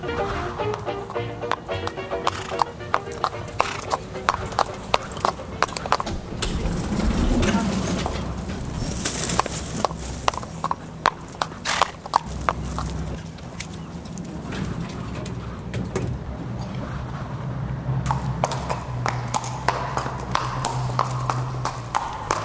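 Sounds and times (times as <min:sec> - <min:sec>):
small Shetland pony's hooves clip-clopping on a hard surface: 0:00.0 - 0:22.4.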